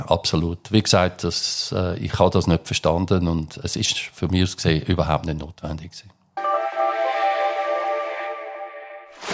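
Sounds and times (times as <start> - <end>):
speech: 0.1 - 6.2
sustained tonal chord: 6.4 - 9.2.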